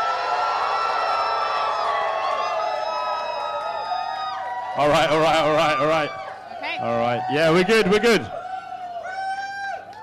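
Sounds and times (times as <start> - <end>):
audience screaming and cheering: 0.0 - 10.0
speech: 4.8 - 8.4.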